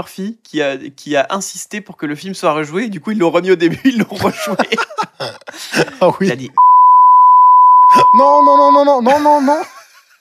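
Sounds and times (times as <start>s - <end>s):
speech: 0.0s - 6.7s, 7.9s - 9.8s
laughter: 4.2s - 6.3s
long censorship beep pure tone: 6.6s - 9.0s.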